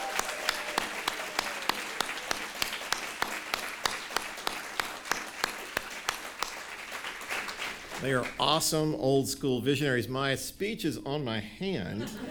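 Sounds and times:
audience clapping: 0.0 - 8.9
speech: 8.0 - 12.2
laughter: 11.9 - 12.2.

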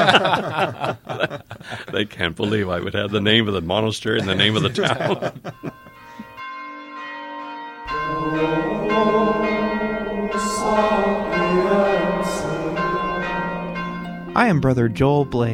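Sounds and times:
speech: 0.0 - 0.9, 2.0 - 5.7, 14.4 - 15.5
church bell ringing: 6.4 - 14.7.

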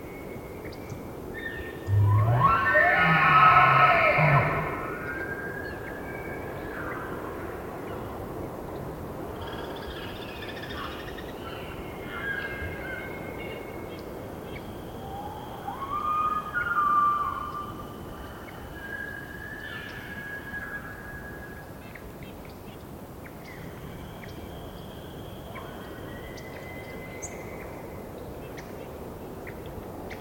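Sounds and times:
wind gusting in the trees: 0.0 - 30.2
bull elk bugling in rutting season: 1.9 - 5.3
elk bugles and squealing whistles: 1.9 - 5.8, 15.0 - 17.8.

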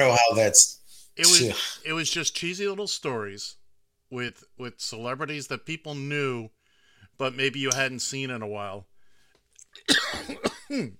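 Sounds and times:
speech: 0.0 - 6.6, 7.2 - 8.9, 9.8 - 10.9
person coughing: 9.8 - 10.9
throaty vocal sound as the throat clears: 9.8 - 10.9.

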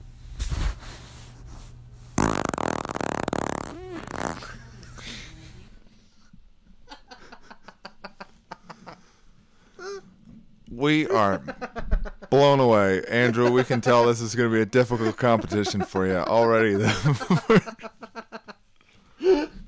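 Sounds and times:
loud raspy sputtering fart: 2.2 - 4.6
laughter: 6.9 - 9.1, 11.1 - 18.6
speech: 10.8 - 17.8.

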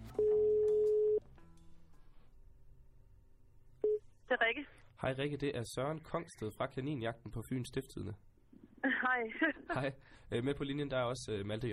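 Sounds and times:
quiet phone line noise: 0.2 - 1.2
telephone ringing tone on outgoing call: 0.2 - 1.2
speech: 5.0 - 8.3, 9.1 - 11.7
laughter: 8.8 - 10.0.

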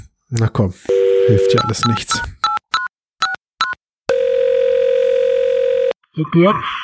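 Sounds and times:
speech: 0.3 - 2.4, 6.2 - 6.8
telephone ringing tone: 0.9 - 2.0, 4.1 - 6.0
two-tone telephone dialing beeps: 0.9 - 4.4.

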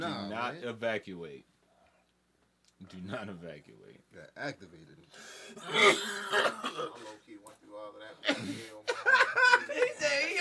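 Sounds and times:
speech: 0.0 - 1.6, 2.8 - 10.3
quiet low-key cough: 5.6 - 7.2.

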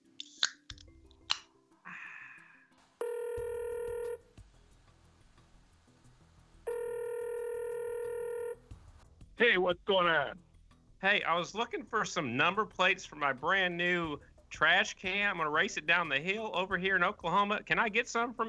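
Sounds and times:
telephone line ringing: 3.0 - 4.2, 6.7 - 8.6
speech: 9.4 - 18.4.

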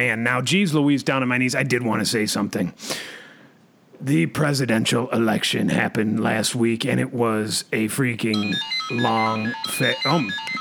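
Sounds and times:
man talking loudly and animatedly: 0.0 - 2.8, 4.0 - 10.6
speech: 0.0 - 3.2, 4.0 - 10.6
phone ringtone signalling an incoming call: 8.3 - 10.6.

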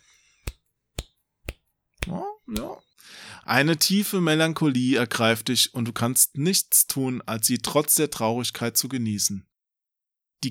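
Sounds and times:
finger snaps: 0.4 - 2.8
speech: 2.1 - 9.5.

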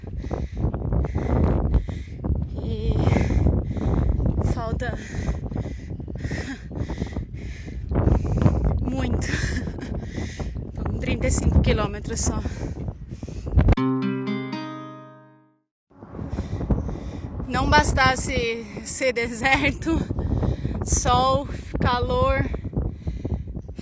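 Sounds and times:
strong headwind in a sunny hot desert buffeting the microphone: 0.0 - 13.8, 16.0 - 23.8
speech: 11.3 - 12.8, 17.7 - 20.1, 20.9 - 22.6.

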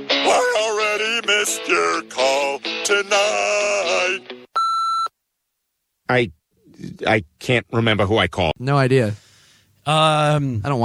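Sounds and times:
person singing a short melodic phrase: 0.2 - 4.5
speech: 1.4 - 4.4, 6.1 - 9.2, 9.9 - 10.8
electronic answering machine beep: 4.6 - 5.1.

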